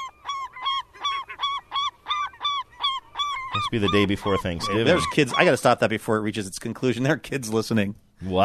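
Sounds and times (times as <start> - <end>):
bird copulation call as a male mounts a female: 0.0 - 5.8
speech: 3.6 - 8.4.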